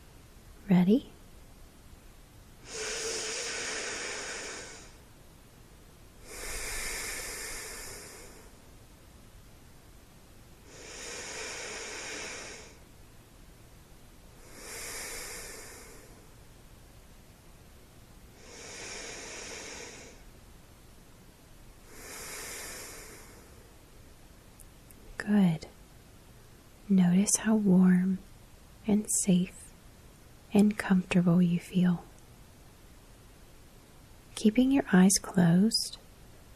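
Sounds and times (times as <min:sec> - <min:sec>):
speech: 0:00.7 - 0:01.2, 0:26.9 - 0:28.3, 0:28.9 - 0:29.6, 0:30.5 - 0:32.1, 0:34.4 - 0:36.0
slow deep breaths at bedtime: 0:02.6 - 0:05.1, 0:06.2 - 0:08.8, 0:10.6 - 0:12.9, 0:14.3 - 0:16.4, 0:18.3 - 0:20.4, 0:21.7 - 0:23.9.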